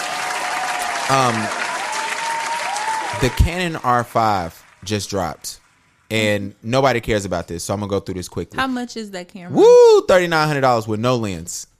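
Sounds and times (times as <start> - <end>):
cheering whoop: 0.0 - 3.8
hand clapping: 0.0 - 5.7
speech: 1.1 - 1.6, 3.1 - 11.7.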